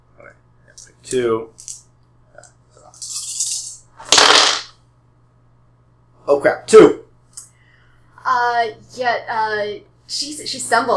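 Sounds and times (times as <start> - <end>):
speech: 0.2 - 1.7, 6.3 - 7.0, 8.5 - 10.9
dice rattling across a hard table in a game: 2.9 - 4.8.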